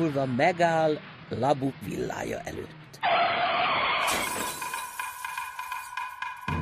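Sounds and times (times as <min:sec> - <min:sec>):
speech: 0:00.0 - 0:03.2
car crashing into a newsstand: 0:03.7 - 0:05.5
glass shattering: 0:04.0 - 0:06.4
falling debris clattering and tinkling: 0:04.1 - 0:06.5.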